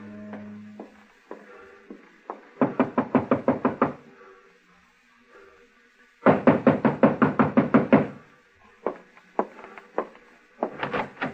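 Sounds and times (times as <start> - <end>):
loud rapid knocking on a door: 2.3 - 4.0, 6.2 - 8.2.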